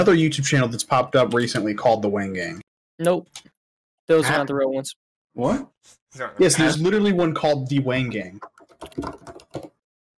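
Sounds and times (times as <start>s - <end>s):
speech: 0.0s - 3.5s, 4.1s - 9.4s
soft typing on a computer keyboard entering a search: 8.4s - 9.8s.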